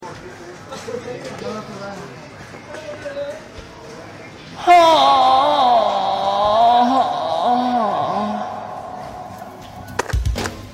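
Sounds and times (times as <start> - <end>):
person groaning: 4.6 - 9.5.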